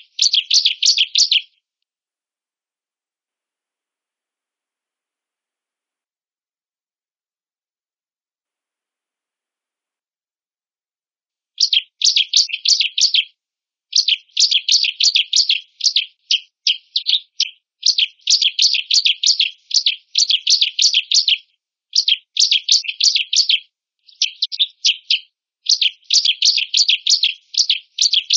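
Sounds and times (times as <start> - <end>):
female Bar-winged prinia buzzy chirps and rasping notes: 0.0 - 1.6, 11.6 - 13.3, 13.9 - 28.3.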